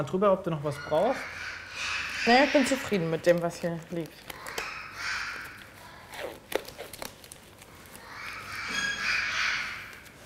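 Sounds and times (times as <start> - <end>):
speech: 0.0 - 4.4
parakeet with a foot injury squawking at a veterinary clinic: 0.7 - 6.4, 7.9 - 10.2
rustling: 2.5 - 10.2.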